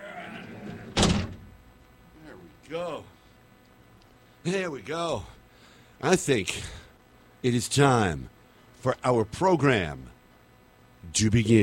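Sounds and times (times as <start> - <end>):
heavy door slamming shut: 0.5 - 1.6
speech: 2.7 - 3.2, 4.4 - 5.4, 6.0 - 6.8, 7.4 - 10.2, 11.0 - 11.6.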